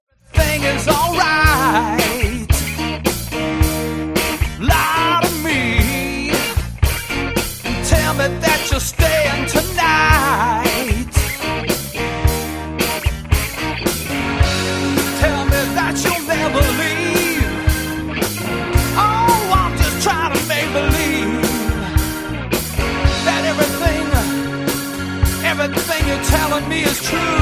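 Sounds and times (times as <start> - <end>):
rock, pop and blues play-along drums: 0.4 - 27.4.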